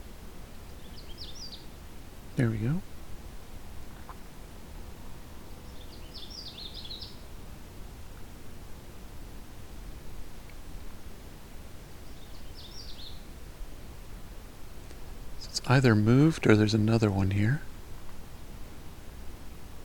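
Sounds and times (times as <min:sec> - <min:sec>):
outdoor hiss: 0:00.0 - 0:19.8
Canada warbler singing: 0:00.7 - 0:01.8, 0:05.6 - 0:07.3, 0:12.0 - 0:13.3
speech: 0:02.4 - 0:02.9, 0:15.7 - 0:17.7.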